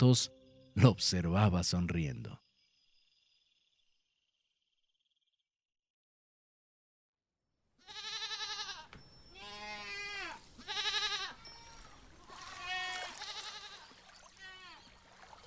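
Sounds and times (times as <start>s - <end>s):
speech: 0.0s - 2.4s
goat bleating: 7.8s - 14.8s.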